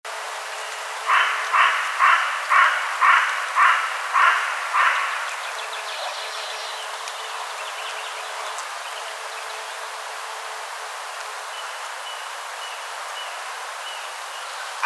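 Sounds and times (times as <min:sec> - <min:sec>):
carrion crow Corvus corone cawing harshly: 0:01.1 - 0:05.4.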